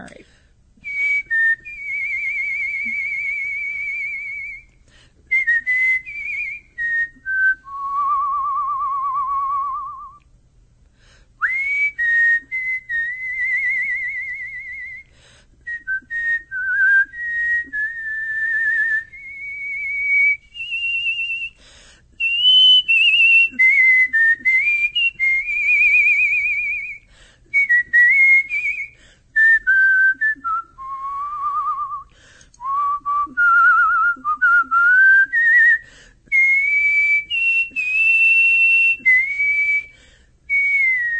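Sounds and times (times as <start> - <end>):
speech: 0.0 - 0.4
person whistling a melody: 0.8 - 4.7, 5.3 - 10.3, 11.4 - 15.1, 15.7 - 21.6, 22.2 - 41.1.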